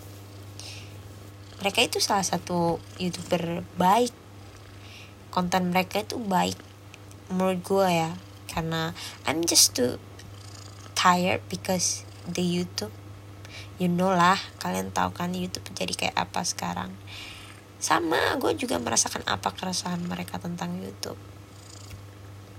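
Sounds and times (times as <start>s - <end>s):
domestic cat purring: 0.1s - 6.7s, 7.5s - 12.9s, 16.8s - 22.0s
speech: 1.6s - 4.2s, 5.3s - 6.7s, 7.3s - 10.1s, 11.0s - 13.0s, 13.6s - 21.3s.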